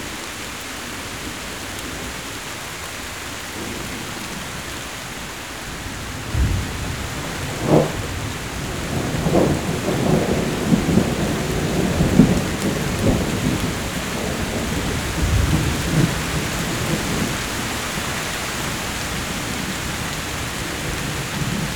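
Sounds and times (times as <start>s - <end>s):
steady rain hissing: 0.0s - 21.7s
wind: 0.0s - 21.7s
low rolling rumbles of thunder: 5.6s - 21.7s.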